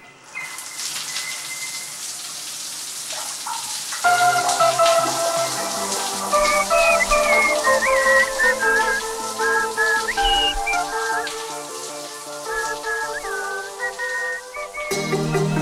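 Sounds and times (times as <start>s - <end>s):
shower water running: 0.0s - 15.6s
sustained tonal sounds: 4.1s - 15.6s.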